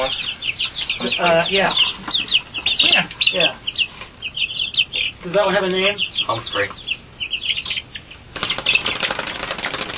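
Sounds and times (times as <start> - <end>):
speech: 0.0 - 0.4, 1.0 - 2.2, 3.3 - 3.6, 5.2 - 6.8
chickens clucking: 0.0 - 9.9.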